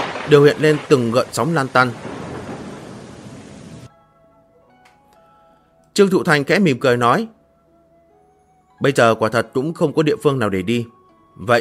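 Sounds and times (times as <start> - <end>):
heavy rain pouring near a deserted temple and ponds: 0.0 - 3.9
thunder rumbling near a deserted temple: 0.0 - 3.9
speech: 0.3 - 2.1, 6.0 - 7.4, 8.8 - 11.5.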